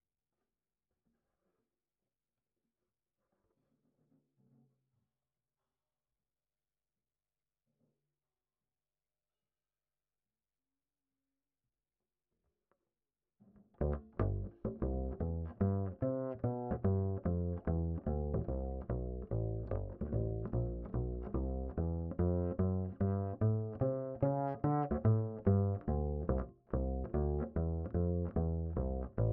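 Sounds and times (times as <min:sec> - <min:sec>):
bass line: 0:13.8 - 0:29.3.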